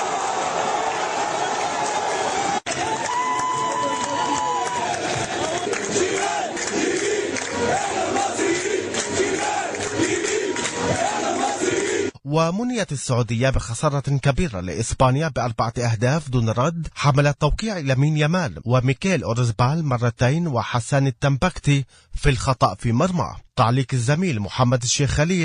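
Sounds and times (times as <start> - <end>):
football fans cheering and chanting after match: 0.0 - 12.2
rhythmic shouting of football fans: 2.7 - 12.1
speech: 12.4 - 25.4.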